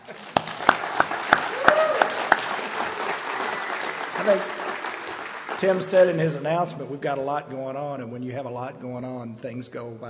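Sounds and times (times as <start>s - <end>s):
church audience applause: 0.0s - 6.4s
speech: 4.2s - 4.6s, 5.6s - 10.0s.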